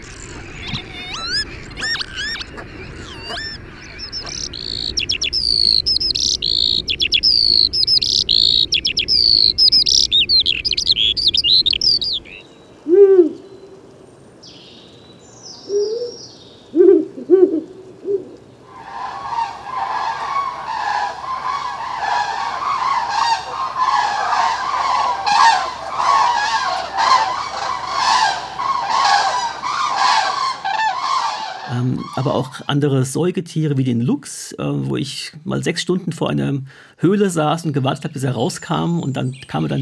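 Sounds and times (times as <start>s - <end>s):
dense birdsong with rapid chirps and whistled phrases: 0.0s - 12.4s, 18.7s - 32.8s
low soft hoots: 0.0s - 13.8s, 16.8s - 32.8s
speech: 32.3s - 39.8s.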